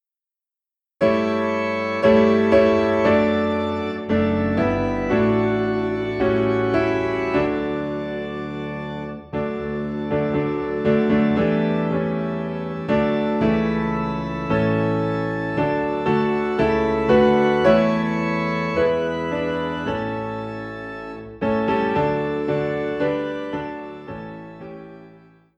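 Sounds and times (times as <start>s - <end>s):
organ playing high in D: 1.0s - 25.5s
piano playing high in D: 1.0s - 25.5s.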